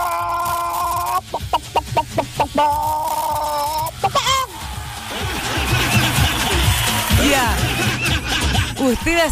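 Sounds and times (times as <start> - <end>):
person imitating clucking hen: 0.0 - 4.5
speech: 2.6 - 3.0, 8.8 - 9.3
laughter: 5.2 - 9.0.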